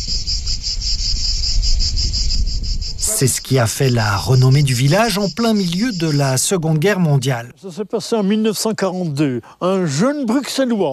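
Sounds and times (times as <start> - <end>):
cicadas singing: 0.0 - 7.4
speech: 3.2 - 10.9.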